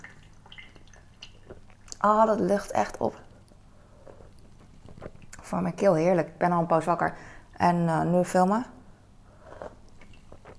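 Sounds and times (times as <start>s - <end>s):
speech: 2.0s - 3.3s, 5.5s - 8.8s
person drinking from a double-walled glass: 3.9s - 5.4s, 9.3s - 10.5s.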